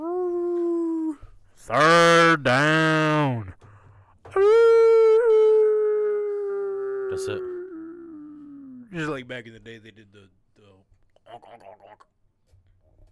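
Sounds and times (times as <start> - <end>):
person imitating a red wolf howl: 0.0 - 3.6, 4.3 - 9.1
speech: 1.6 - 2.9, 9.3 - 10.7.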